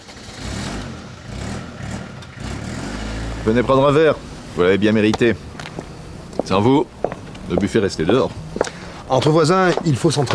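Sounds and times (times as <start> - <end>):
truck engine starting up and driving off in a village: 0.0 - 8.6
speech: 3.4 - 5.5, 6.4 - 8.4, 9.1 - 10.3.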